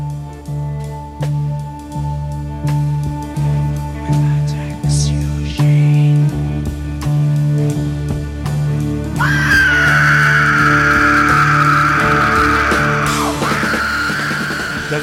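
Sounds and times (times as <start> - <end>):
loud rock song with heavy instrumentation: 0.0 - 15.0
long piercing vocal scream in a rock song: 9.2 - 15.0.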